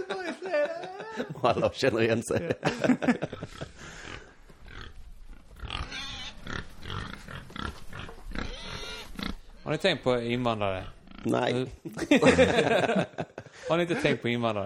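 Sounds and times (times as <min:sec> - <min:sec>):
laughter: 0:00.0 - 0:04.1, 0:11.8 - 0:14.4
speech: 0:01.2 - 0:04.0, 0:09.7 - 0:14.6
pigs grunting and squealing at feeding time: 0:03.4 - 0:11.6.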